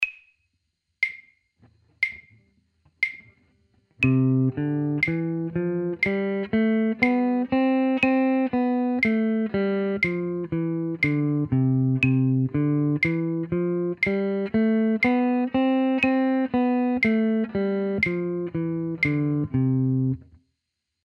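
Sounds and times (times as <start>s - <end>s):
do re mi scale practice: 3.0s - 3.4s, 4.0s - 20.4s.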